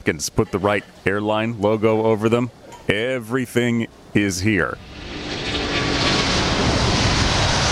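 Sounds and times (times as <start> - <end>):
speech: 0.0 - 5.0
Airbus A380 jet airliner roaring past overhead: 4.7 - 7.7.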